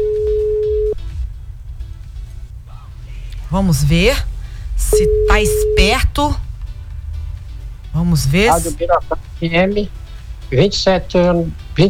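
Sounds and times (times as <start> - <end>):
steady electronic phone tone: 0.0 - 1.0, 4.9 - 6.0
low rumbling background: 0.0 - 11.8
speech: 3.5 - 6.4, 8.0 - 11.8.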